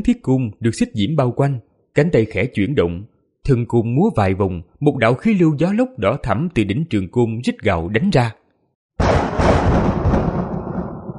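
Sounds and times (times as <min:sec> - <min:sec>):
speech: 0:00.0 - 0:08.4
thunder sound effect crack rolling into a rumble: 0:09.0 - 0:11.1.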